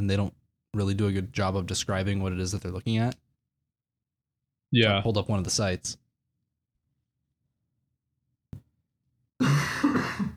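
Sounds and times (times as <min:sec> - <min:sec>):
speech: 0:00.0 - 0:03.2, 0:04.7 - 0:06.0
raspy coughing and throat clearing: 0:09.4 - 0:10.3.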